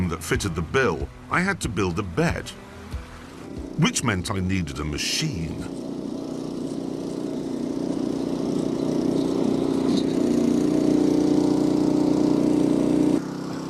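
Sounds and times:
speech: 0.1 - 2.7, 3.8 - 5.9
small single-cylinder engine chugging: 2.9 - 13.6.

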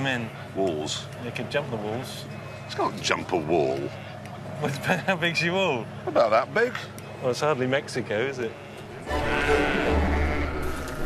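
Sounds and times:
speech: 0.0 - 9.9
North Country mule sheep bleating in an auction ring: 8.4 - 11.0.

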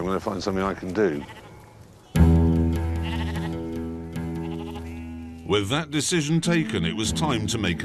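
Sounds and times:
speech: 0.0 - 1.4, 5.5 - 7.8
ewes bleating: 0.9 - 5.7.

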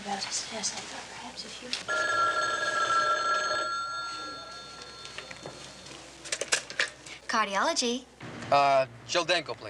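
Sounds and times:
speech: 0.2 - 3.0, 7.3 - 9.6
telephone bell ringing: 1.9 - 6.0
handling sounds: 4.1 - 7.1.

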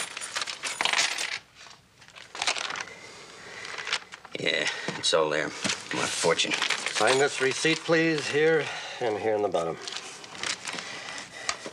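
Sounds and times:
coins, keys and a watch clinking on a hard counter: 0.0 - 1.4, 6.8 - 8.0
speech: 4.4 - 10.0.

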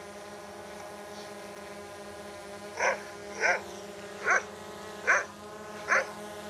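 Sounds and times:
hovering drone buzzing: 0.0 - 6.4
loud dog barks played through a speaker: 2.8 - 3.6, 4.2 - 5.3, 5.9 - 6.1.

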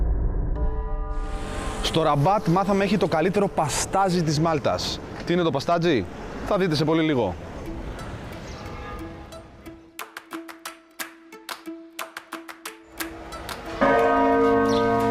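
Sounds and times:
dense wash of sound: 0.0 - 3.6
speech: 1.8 - 7.5
church bells ringing: 13.7 - 15.1.

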